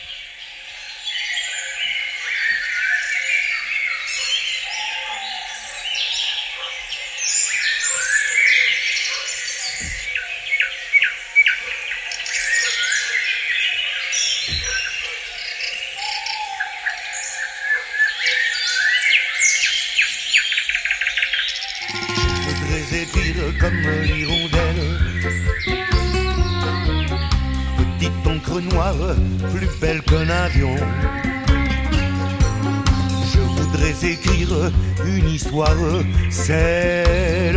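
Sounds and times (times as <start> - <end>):
dense chorus of forest birds chirping and trilling with cathedral-like reverberation: 0.0 - 37.5
low thumps: 9.7 - 10.2, 14.5 - 14.9, 21.8 - 37.3.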